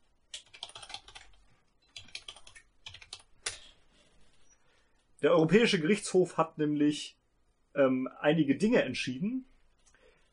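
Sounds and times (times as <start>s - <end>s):
computer keyboard clicking and tapping: 0.3s - 4.5s
speech: 5.2s - 7.2s, 7.8s - 9.5s.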